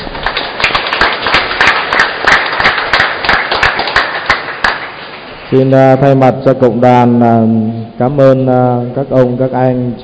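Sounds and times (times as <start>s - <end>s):
large audience crowd applauding loudly: 0.0s - 5.4s
speech: 5.5s - 10.0s.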